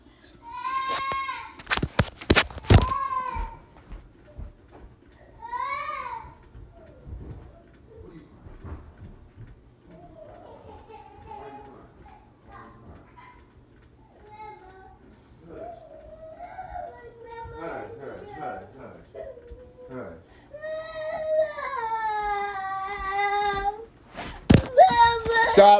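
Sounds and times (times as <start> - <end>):
young child fake crying and yelling in whiny wails: 0.4 - 1.6, 2.6 - 3.7, 5.3 - 6.9, 14.2 - 23.9, 24.5 - 25.7.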